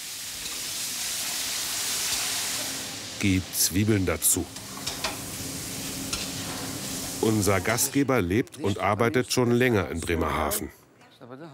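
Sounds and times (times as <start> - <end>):
meat searing in hot oil in a kazan: 0.0 - 8.0
speech: 3.2 - 4.7, 7.2 - 11.5.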